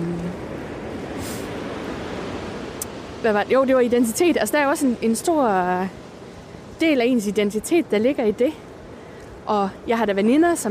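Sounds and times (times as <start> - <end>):
wind rushing over open water: 0.0 - 10.7
speech: 3.2 - 6.0, 6.8 - 8.6, 9.5 - 10.7.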